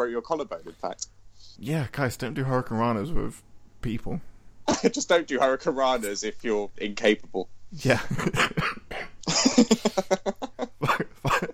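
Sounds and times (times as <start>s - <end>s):
speech: 0.0s - 10.5s
harsh coughing fit: 8.2s - 10.0s, 10.8s - 11.5s.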